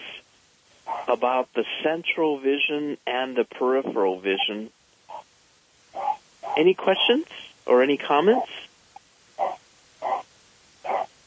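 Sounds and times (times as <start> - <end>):
faint background hiss: 0.0 - 11.2
dog barking: 0.9 - 1.1, 9.4 - 10.2, 10.8 - 11.1
speech: 1.1 - 4.8, 6.6 - 8.7.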